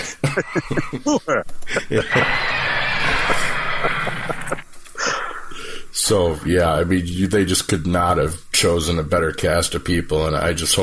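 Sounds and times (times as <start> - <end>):
laughter: 0.0 - 4.6
speech: 0.1 - 4.6, 6.1 - 10.8
horses neighing and whinnying loudly: 2.0 - 4.6.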